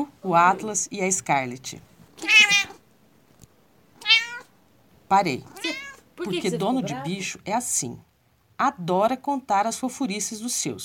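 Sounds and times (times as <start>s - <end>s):
speech: 0.0s - 2.3s, 5.1s - 10.8s
cat meowing: 2.2s - 2.8s, 4.0s - 4.5s, 5.4s - 6.1s.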